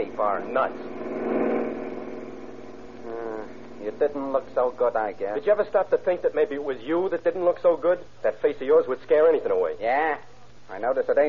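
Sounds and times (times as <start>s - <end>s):
speech: 0.0s - 1.3s, 3.0s - 11.2s
car driving past without stopping: 0.0s - 4.8s.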